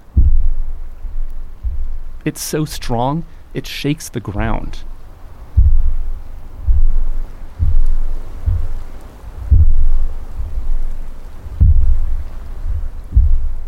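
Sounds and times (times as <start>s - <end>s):
thumping of imploding geothermal gas bubbles underwater in Black Sand Pool: 0.0s - 3.6s, 4.4s - 13.6s
speech: 2.2s - 4.9s.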